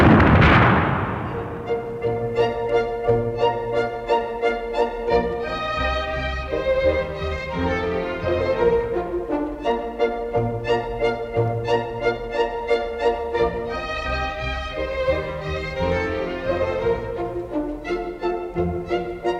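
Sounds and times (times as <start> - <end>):
cannon firing boom: 0.0 - 2.1
orchestral music: 0.0 - 19.3.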